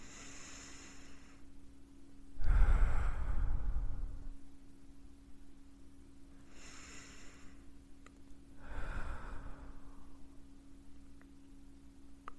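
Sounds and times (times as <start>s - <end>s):
slow deep breathing in through the nose and out through the mouth: 0.0s - 1.5s, 2.4s - 4.4s, 6.4s - 7.7s, 8.6s - 10.4s
steady low hum: 0.0s - 12.3s.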